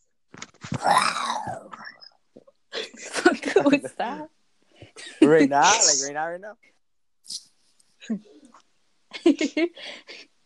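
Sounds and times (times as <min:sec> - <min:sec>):
speech: 0:00.8 - 0:01.2, 0:03.6 - 0:04.4, 0:05.3 - 0:06.7, 0:08.1 - 0:08.3, 0:09.3 - 0:10.2
person imitating an animal roar with a raspy growling cry: 0:00.8 - 0:02.0.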